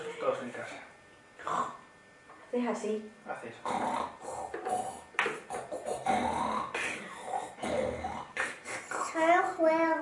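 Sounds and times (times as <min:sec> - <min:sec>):
speech: 0:00.2 - 0:00.9, 0:02.5 - 0:05.4
voice imitating snoring: 0:03.6 - 0:09.2.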